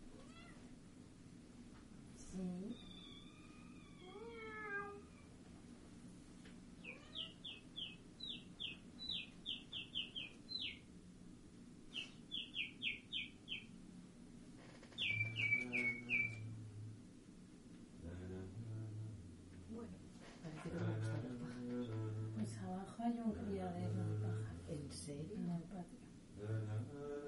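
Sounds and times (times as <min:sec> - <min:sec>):
soft hum: 0:00.0 - 0:27.2
cat meowing: 0:00.2 - 0:00.6, 0:02.8 - 0:05.2, 0:06.8 - 0:07.5
speech: 0:02.3 - 0:02.9.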